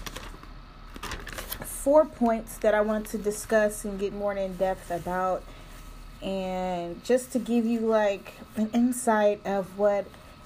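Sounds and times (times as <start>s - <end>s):
paper pages being flipped: 0.0s - 1.7s
speech: 1.8s - 5.6s, 6.2s - 10.2s.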